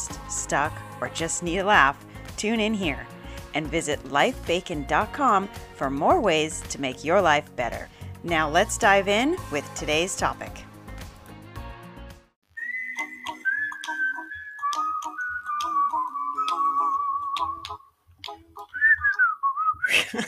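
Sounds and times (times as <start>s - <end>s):
speech: 0.5s - 10.6s
whistled melody of long sustained notes: 12.5s - 20.1s
light ticking percussion: 13.2s - 19.3s.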